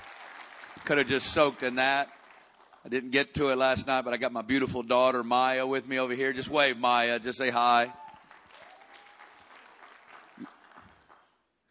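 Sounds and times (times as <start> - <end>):
crowd applause: 0.0 - 3.0, 7.9 - 11.4
speech: 0.8 - 2.2, 2.8 - 8.0.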